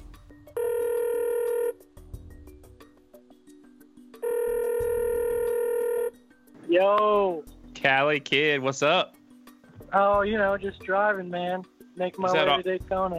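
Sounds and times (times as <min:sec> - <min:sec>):
phone call ringing with electronic rings: 0:00.6 - 0:01.8, 0:04.2 - 0:06.2
speech: 0:06.7 - 0:09.2, 0:09.9 - 0:13.1.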